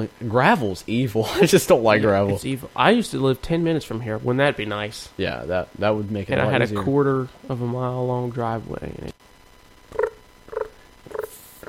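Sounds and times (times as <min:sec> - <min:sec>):
speech: 0:00.0 - 0:10.1
voice imitating chirping crickets: 0:09.9 - 0:11.6.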